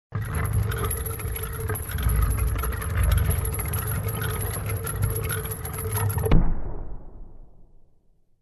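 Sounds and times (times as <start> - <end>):
industrial sliding door opening: 0.1 - 6.4.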